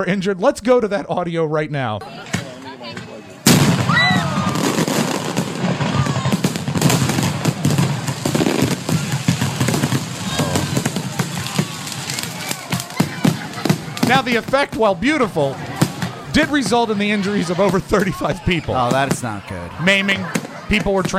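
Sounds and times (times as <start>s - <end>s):
speech: 0.0s - 2.3s, 14.1s - 15.7s, 16.4s - 21.1s
crowd shouting: 2.0s - 21.1s
fireworks exploding after their platform collapsed: 2.2s - 21.1s.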